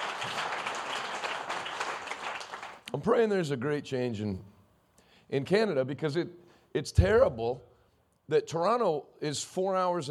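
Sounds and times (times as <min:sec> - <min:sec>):
audience applause: 0:00.0 - 0:02.8
speech: 0:02.9 - 0:04.5, 0:05.3 - 0:07.7, 0:08.3 - 0:10.0.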